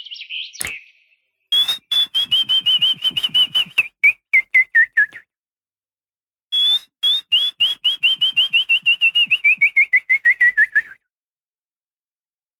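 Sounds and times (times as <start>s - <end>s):
person whistling an imitation of willow warbler song: 1.5s - 5.4s, 6.5s - 11.1s.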